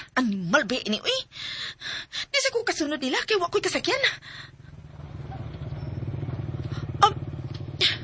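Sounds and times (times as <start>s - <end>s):
speech: 0.2s - 1.6s, 2.4s - 4.6s
motorcycle engine running: 3.8s - 8.0s.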